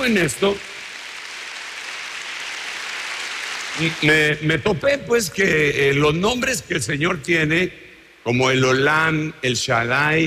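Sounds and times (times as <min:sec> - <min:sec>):
speech: 0:00.0 - 0:00.7, 0:03.8 - 0:10.2
audience applause at a religious gathering: 0:00.0 - 0:04.4.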